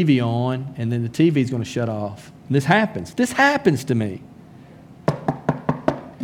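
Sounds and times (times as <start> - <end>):
speech: 0.0 - 4.3
sharp knocks on a door: 5.1 - 6.1.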